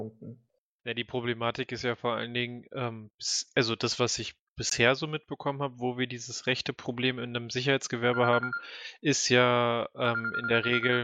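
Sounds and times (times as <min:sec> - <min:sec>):
speech: 0:00.0 - 0:11.0
mobile phone ringtone electronic melody: 0:08.1 - 0:08.7, 0:10.1 - 0:11.0.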